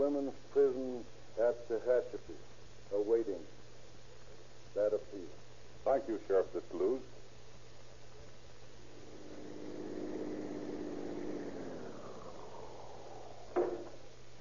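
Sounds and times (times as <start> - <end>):
speech: 0.0 - 3.6, 4.7 - 7.2
hiss: 0.0 - 14.3
police car engine driving past: 8.7 - 14.3.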